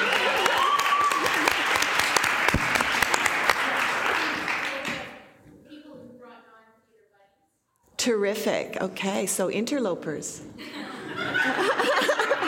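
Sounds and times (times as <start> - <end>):
laughter: 0.0 - 1.6, 10.6 - 12.4
crowd applauding: 0.0 - 5.2
speech: 8.2 - 12.0.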